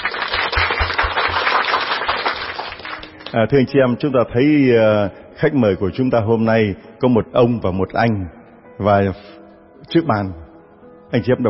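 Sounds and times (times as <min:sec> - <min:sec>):
audience applause: 0:00.0 - 0:03.3
speech: 0:03.3 - 0:10.4, 0:11.1 - 0:11.4.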